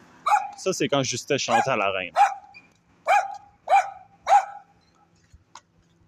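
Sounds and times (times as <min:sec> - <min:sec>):
sharp loud dog barks: 0:00.2 - 0:00.6, 0:01.5 - 0:04.7
speech: 0:00.6 - 0:02.4.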